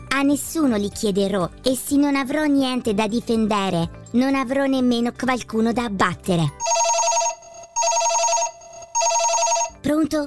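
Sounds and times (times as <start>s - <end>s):
speech: 0.2s - 6.8s
telephone ringing with bright high warbling tone: 6.6s - 9.9s.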